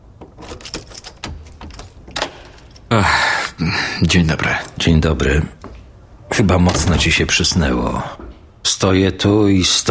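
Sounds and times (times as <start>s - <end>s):
key turning in a door lock: 0.1s - 2.9s
speech: 2.9s - 5.6s, 6.4s - 8.2s, 8.8s - 9.8s.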